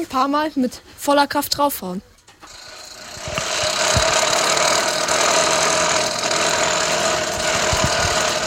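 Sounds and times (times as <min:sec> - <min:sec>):
speech: 0:00.0 - 0:02.6
rough sputtering engine-like rattle: 0:02.5 - 0:08.4.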